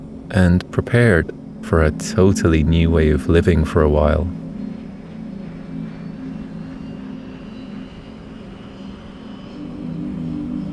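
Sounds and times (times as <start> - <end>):
airplane engine droning during takeoff: 0.0 - 10.7
speech: 0.3 - 4.4.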